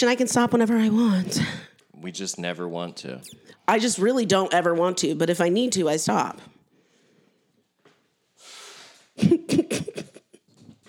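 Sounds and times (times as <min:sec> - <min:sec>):
speech: 0:00.0 - 0:06.6, 0:09.2 - 0:10.0
faint sniffs: 0:08.4 - 0:09.2
person blowing nose: 0:08.4 - 0:10.0.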